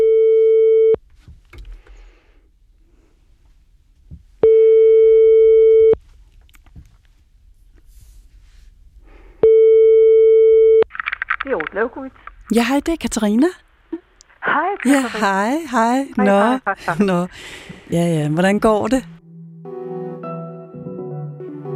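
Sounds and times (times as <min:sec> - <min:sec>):
phone ringback tone while calling: 0:00.0 - 0:01.0, 0:04.4 - 0:06.0, 0:09.4 - 0:10.8
faint noise: 0:00.0 - 0:19.2
speech: 0:11.8 - 0:13.6, 0:14.8 - 0:19.1.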